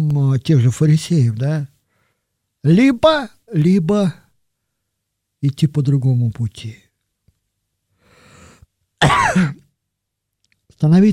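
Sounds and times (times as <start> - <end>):
speech: 0.0 - 1.7, 2.6 - 4.2, 5.4 - 6.8, 9.0 - 9.6, 10.8 - 11.1
person coughing: 9.0 - 9.7.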